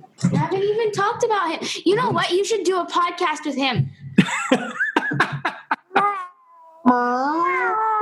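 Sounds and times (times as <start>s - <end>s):
speech: 0.4s - 4.8s
laughter: 4.2s - 6.2s
cat meowing: 5.8s - 8.0s.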